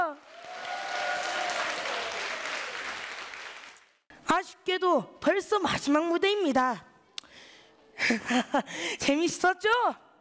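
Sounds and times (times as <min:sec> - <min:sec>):
audience applause: 0:00.2 - 0:04.0
speech: 0:04.4 - 0:06.9, 0:08.1 - 0:10.0.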